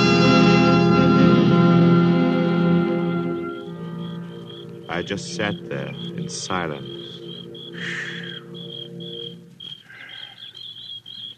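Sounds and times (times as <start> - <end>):
birds chirping and warbling: 0.0 - 11.3
low constant hum: 0.8 - 11.3
crickets trilling: 3.2 - 11.3
speech: 5.0 - 7.0.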